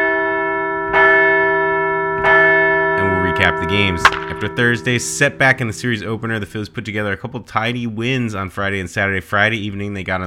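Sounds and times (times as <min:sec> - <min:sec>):
large bell struck: 0:00.0 - 0:06.7
speech: 0:03.4 - 0:10.2.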